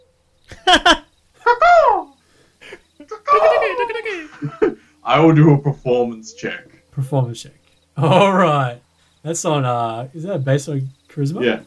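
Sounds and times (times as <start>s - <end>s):
laughter: 0.5s - 1.0s, 2.6s - 4.8s, 8.0s - 8.4s
speech: 5.1s - 11.6s
person imitating bird calls with their voice: 8.0s - 8.3s.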